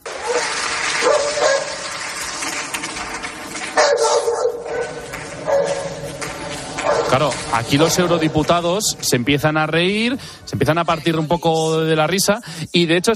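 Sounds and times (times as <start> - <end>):
murmur of room noise in a large hall: 0.0 - 12.0
dog barking loudly: 0.2 - 1.8, 3.8 - 5.9, 6.8 - 7.2
speech: 7.1 - 13.1.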